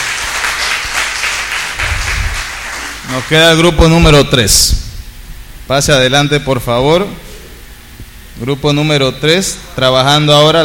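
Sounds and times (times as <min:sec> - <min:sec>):
class audience applause after a group presentation: 0:00.0 - 0:03.4
speech: 0:03.2 - 0:04.8, 0:05.7 - 0:07.2, 0:08.4 - 0:10.6.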